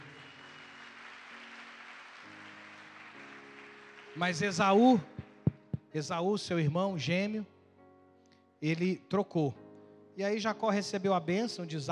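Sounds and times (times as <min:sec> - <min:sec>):
audience applause during a sermon: 0:00.0 - 0:04.5
speech: 0:04.2 - 0:05.3, 0:06.0 - 0:07.5, 0:08.6 - 0:09.6, 0:10.2 - 0:11.9.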